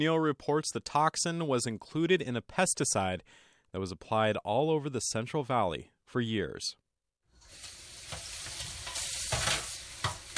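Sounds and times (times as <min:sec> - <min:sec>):
speech: 0:00.0 - 0:06.8
water running from kitchen faucet: 0:07.4 - 0:10.3.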